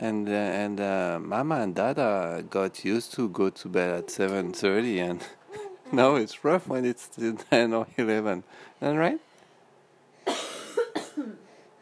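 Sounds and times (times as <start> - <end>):
speech: 0.0 - 9.3
woman coughing: 10.3 - 11.4.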